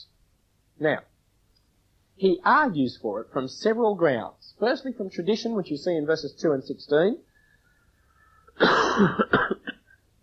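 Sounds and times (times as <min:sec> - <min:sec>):
speech: 0:00.8 - 0:01.1, 0:02.2 - 0:07.3, 0:08.6 - 0:09.5
person coughing: 0:08.5 - 0:10.0
throat clearing: 0:08.5 - 0:10.0.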